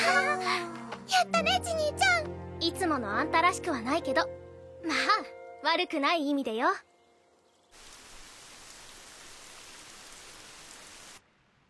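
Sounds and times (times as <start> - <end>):
speech: 1.2 - 2.0, 2.8 - 6.9
rain falling: 7.2 - 11.6.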